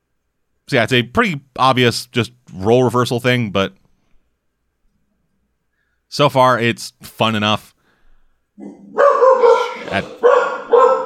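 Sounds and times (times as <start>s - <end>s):
speech: 0.7s - 3.8s, 6.1s - 7.7s, 9.9s - 10.4s
dog barking: 8.6s - 11.0s.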